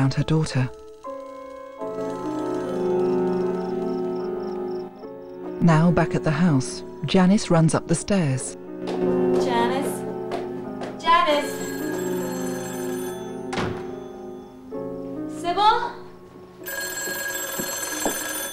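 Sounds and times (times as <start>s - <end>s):
speech: 0.0s - 0.8s, 5.6s - 9.6s
telephone ringing: 0.0s - 4.6s, 11.2s - 14.7s, 16.6s - 18.5s.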